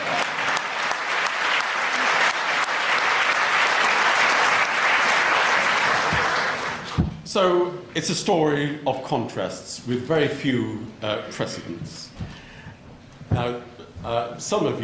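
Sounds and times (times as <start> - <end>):
large audience applause: 0.0 - 7.0
speech: 7.4 - 12.2, 13.3 - 14.8.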